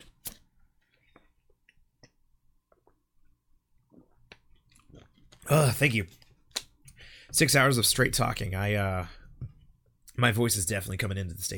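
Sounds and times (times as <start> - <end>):
person drinking water with soft wet gulps and swallows: 3.8 - 5.8
speech: 5.5 - 6.2, 7.3 - 9.2, 10.2 - 11.5.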